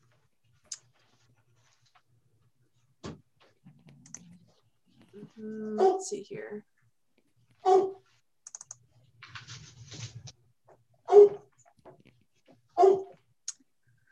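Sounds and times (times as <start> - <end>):
keyboard clicks and light typing: 3.9 - 4.4, 8.4 - 9.6
speech: 5.2 - 6.7
pet dog barking in a room: 5.8 - 6.1, 7.6 - 8.1, 11.1 - 11.5, 12.8 - 13.2.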